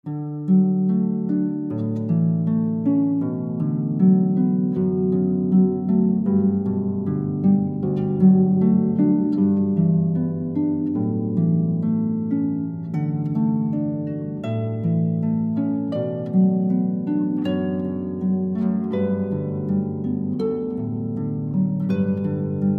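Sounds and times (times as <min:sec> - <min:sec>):
solo harp playing: 0:00.0 - 0:22.7.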